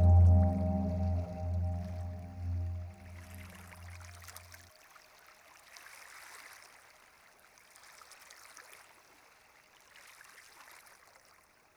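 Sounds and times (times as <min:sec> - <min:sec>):
synth pads: 0:00.0 - 0:03.4.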